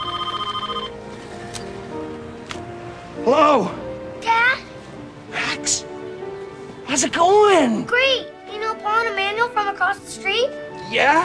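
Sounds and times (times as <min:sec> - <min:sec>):
telephone ringing with a trilling electronic tone: 0:00.0 - 0:01.0
speech: 0:03.3 - 0:03.8, 0:05.7 - 0:05.9, 0:06.9 - 0:08.3, 0:08.9 - 0:11.2.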